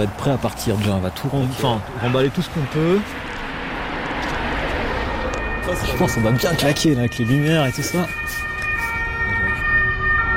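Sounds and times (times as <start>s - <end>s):
speech: 0.0s - 3.3s, 5.7s - 8.5s
low vehicle rumble: 0.0s - 10.3s
fire engine siren wailing: 3.8s - 10.3s.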